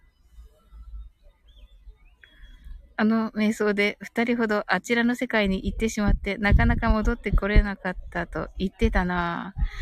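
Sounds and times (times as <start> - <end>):
sparrow chirping: 0.0 - 3.6, 5.4 - 9.7
speech: 3.0 - 9.7
steady low outdoor rumble: 5.4 - 9.7.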